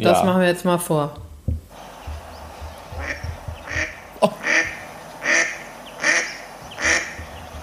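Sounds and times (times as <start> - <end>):
speech: 0.0 - 1.2, 4.2 - 4.5
soft thumps: 1.2 - 4.9, 6.7 - 7.6
low rumbling background: 1.2 - 7.6
mallard duck quacking: 2.9 - 7.6
laughter: 4.1 - 4.7.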